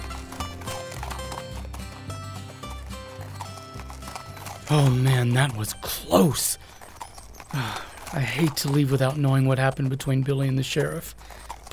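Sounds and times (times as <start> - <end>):
rich music: 0.0 - 6.8
horse hooves galloping as a horse rides off: 0.0 - 11.7
speech: 4.7 - 6.8, 7.5 - 11.7.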